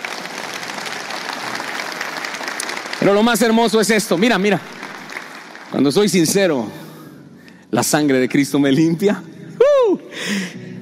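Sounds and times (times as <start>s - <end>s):
church congregation applauding: 0.0s - 6.6s
speech: 3.0s - 4.7s, 5.7s - 6.8s, 7.7s - 9.4s.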